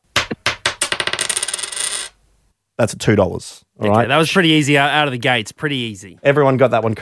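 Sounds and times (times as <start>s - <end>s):
two-dollar coin dropping onto a hard surface and rattling: 0.5s - 2.2s
speech: 2.8s - 7.0s.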